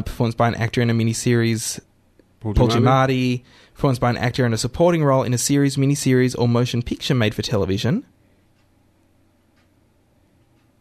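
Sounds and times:
speech: 0:00.0 - 0:08.2
studio clock ticking softly: 0:04.2 - 0:10.8.

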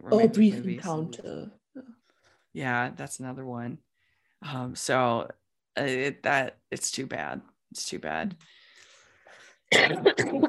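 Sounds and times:
speech: 0:00.0 - 0:01.9, 0:02.6 - 0:08.6, 0:09.7 - 0:10.4
faint breath: 0:08.4 - 0:09.7
harsh cough: 0:09.7 - 0:10.4.

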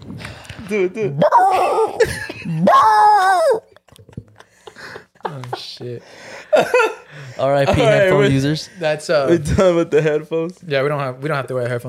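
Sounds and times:
person imitating a dog barking: 0:00.7 - 0:03.7
speech: 0:00.7 - 0:03.7, 0:05.3 - 0:11.8
laughter: 0:03.6 - 0:08.1.

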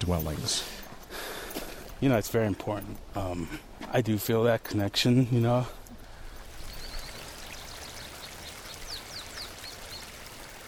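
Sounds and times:
speech: 0:00.0 - 0:00.8, 0:02.0 - 0:05.8
creek water flowing in a forested canyon: 0:05.9 - 0:10.6
faint high bird chirps: 0:06.4 - 0:10.6.

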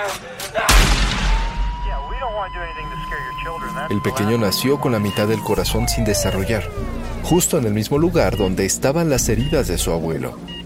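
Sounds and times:
sharp loud gunshot with deep booming rumble: 0:00.7 - 0:02.1
wavering tones: 0:01.7 - 0:08.3
speech: 0:02.4 - 0:10.6.

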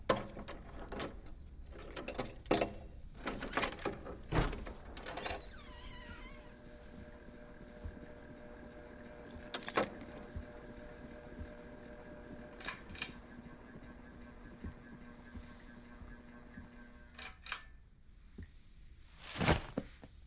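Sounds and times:
low steady mechanical hum: 0:00.0 - 0:18.6
large keys jangling: 0:00.1 - 0:04.3.

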